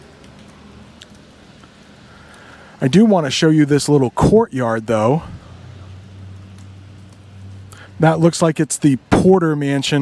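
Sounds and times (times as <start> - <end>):
rain falling outdoors: 0.0 - 9.9
speech: 2.8 - 5.4, 8.0 - 9.9.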